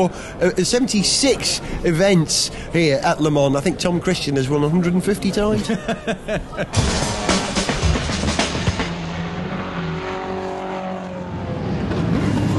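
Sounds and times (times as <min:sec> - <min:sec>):
speech: 0:00.0 - 0:07.2
laughter: 0:04.8 - 0:07.0
race cars roaring off the grid at the start of Le Mans 24 Hours: 0:06.7 - 0:12.5.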